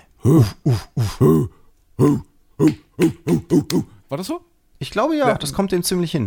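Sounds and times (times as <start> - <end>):
person imitating football fans' huh chant with short grunted shouts: 0.2 - 3.9
speech: 0.2 - 6.2.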